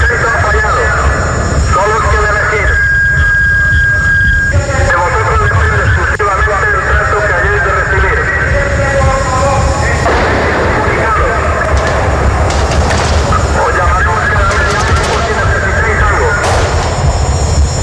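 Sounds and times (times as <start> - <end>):
distorted voice booming through a loudspeaker: 0.0 - 3.1, 3.8 - 16.8
sharp gunshots: 10.0 - 17.5.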